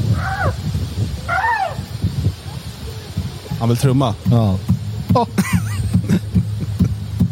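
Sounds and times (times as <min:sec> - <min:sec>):
squealing elephant calls from a video: 0:00.1 - 0:00.7, 0:01.2 - 0:02.0
speech: 0:03.7 - 0:05.6
laughter: 0:05.1 - 0:07.1.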